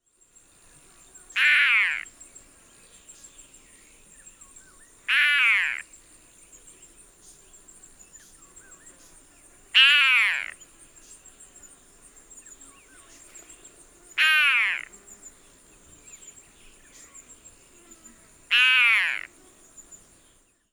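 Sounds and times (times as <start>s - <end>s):
Broad-billed roller calling: 1.4s - 2.1s, 5.1s - 5.8s, 9.8s - 10.6s, 14.2s - 14.9s, 18.5s - 19.4s.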